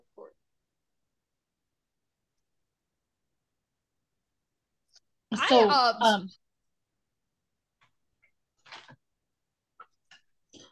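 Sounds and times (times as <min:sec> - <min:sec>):
speech: 0:05.3 - 0:06.4
tarot cards being shuffled: 0:08.6 - 0:09.0.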